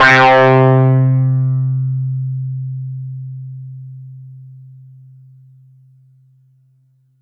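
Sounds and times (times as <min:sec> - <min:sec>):
Yamaha FS1r hyper fuzz synth note C5: 0:00.0 - 0:02.5.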